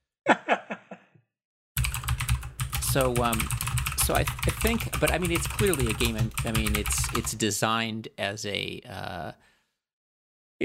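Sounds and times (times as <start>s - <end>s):
clicky keystrokes on a mechanical keyboard: 1.8s - 7.4s
speech: 2.9s - 9.5s.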